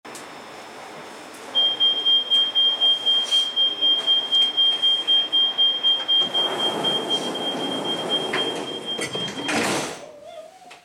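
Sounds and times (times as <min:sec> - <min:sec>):
Metro G5 train door closing: 0:01.6 - 0:10.0.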